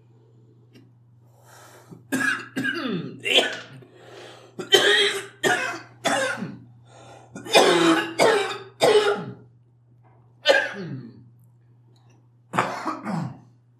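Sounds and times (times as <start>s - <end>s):
harsh coughing after a big vape hit: 2.1s - 3.8s, 4.6s - 6.6s, 7.4s - 9.4s, 10.5s - 11.1s, 12.6s - 13.5s.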